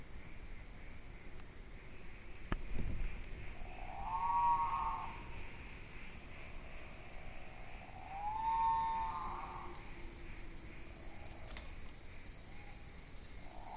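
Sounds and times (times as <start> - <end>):
high insect drone in Indonesia: 0.0 - 13.7
great pitta whistling low in Indonesia: 3.7 - 5.3, 8.0 - 9.8.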